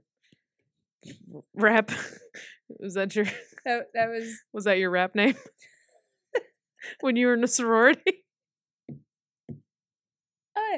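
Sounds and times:
speech: 1.0 - 5.7, 6.8 - 8.2
knocking on a door: 8.8 - 9.8.

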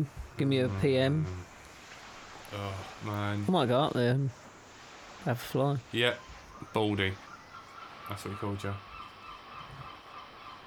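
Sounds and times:
speech: 0.0 - 1.5, 2.5 - 4.4, 5.2 - 7.2, 8.1 - 8.9
seagulls calling: 6.0 - 10.6.

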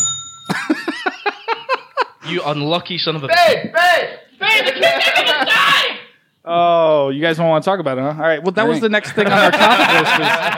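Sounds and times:
bell being struck: 0.0 - 0.6
laughter: 0.5 - 2.4, 4.4 - 6.0, 8.9 - 10.5
speech: 2.3 - 10.5.

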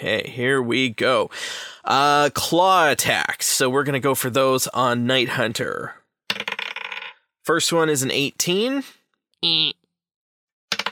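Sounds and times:
speech: 0.0 - 6.0, 7.4 - 9.8
person making a short vocal exclamation: 9.4 - 9.8.

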